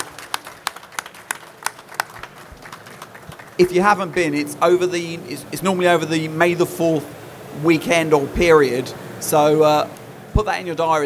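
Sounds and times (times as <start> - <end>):
sharp evenly spaced claps: 0.0 - 4.4
small audience applause: 0.0 - 4.4
speech: 3.6 - 11.0.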